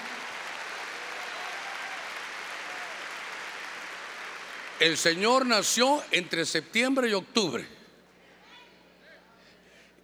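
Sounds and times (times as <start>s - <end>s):
crowd clapping hands at a religious gathering: 0.0s - 5.5s
speech: 4.8s - 7.8s.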